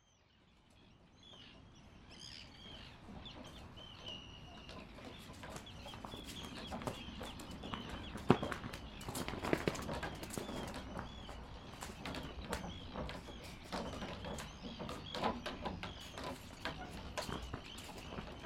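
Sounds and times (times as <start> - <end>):
flag flapping in wind: 4.7 - 18.4.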